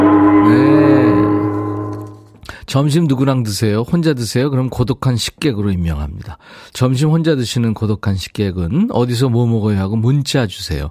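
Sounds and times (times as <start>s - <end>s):
deep gong stroke: 0.0s - 2.3s
speech: 2.8s - 10.8s.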